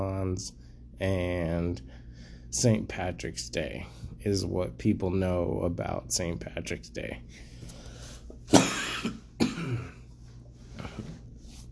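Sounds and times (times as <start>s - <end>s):
speech: 0.3s - 7.5s
harsh coughing fit from a person who choked: 8.5s - 10.1s
throat clearing: 8.5s - 10.1s.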